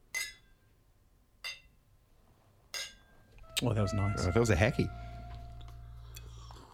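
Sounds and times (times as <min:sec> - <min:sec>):
glasses clinking in a toast: 0:00.1 - 0:00.7, 0:02.7 - 0:03.4
speech: 0:03.6 - 0:05.1.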